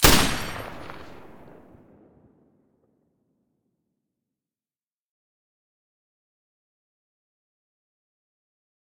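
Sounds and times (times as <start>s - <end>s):
M249 machine gun with silencer: 0.0s - 1.4s.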